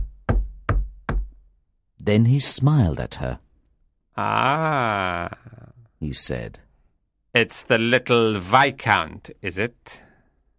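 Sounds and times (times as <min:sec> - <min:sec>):
firm knocking on a solid wall: 0:00.0 - 0:01.4
speech: 0:02.1 - 0:03.4, 0:04.2 - 0:06.6, 0:07.3 - 0:10.1.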